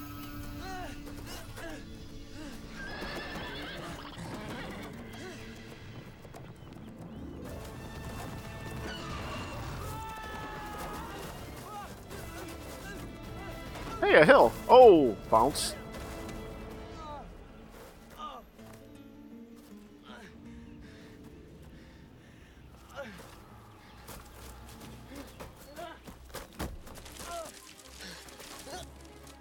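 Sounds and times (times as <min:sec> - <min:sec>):
horse hooves clip-clopping: 0:00.2 - 0:19.9, 0:20.8 - 0:29.3
horse whinnying: 0:02.7 - 0:05.6, 0:08.7 - 0:10.5
speech: 0:14.2 - 0:15.8.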